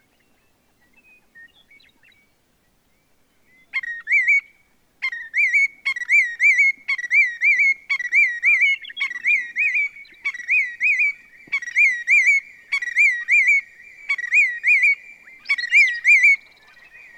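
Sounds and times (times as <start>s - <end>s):
willet calling with rolling ringing calls: 3.5s - 17.1s.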